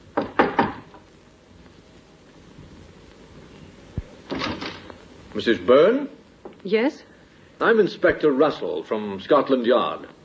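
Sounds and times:
quick firm knocks on a wooden door: 0.2s - 0.9s
speech: 5.4s - 10.2s.

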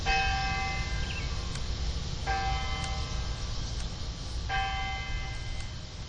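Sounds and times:
courthouse clock tower bell chiming: 0.0s - 1.3s, 2.3s - 3.4s, 4.5s - 5.8s
steady low outdoor rumble: 0.0s - 6.0s.

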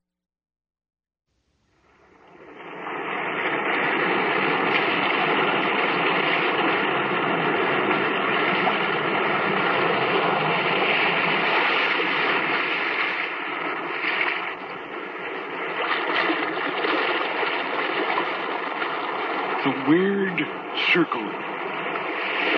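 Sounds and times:
restless sea waves washing and roaring: 1.7s - 22.5s.

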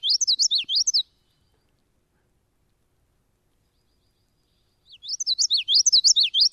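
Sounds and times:
common yellowthroat warbler song: 0.0s - 1.9s, 3.5s - 6.5s.

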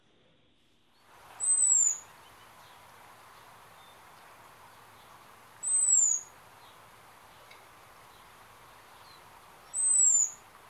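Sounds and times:
soft steady hiss: 0.0s - 10.6s
American Robin seet call: 1.4s - 2.1s, 5.5s - 6.4s, 9.6s - 10.5s.

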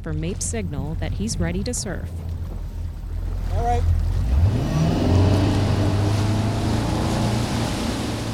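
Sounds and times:
speech: 0.0s - 2.4s, 3.5s - 4.7s
wake boat engine droning and accelerating: 0.0s - 8.3s
rushing water and spray from a wake boat: 2.2s - 8.3s.

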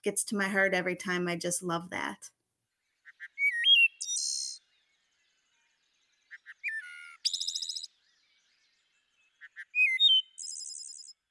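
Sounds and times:
speech: 0.0s - 2.4s
wood thrush singing: 2.8s - 11.2s.

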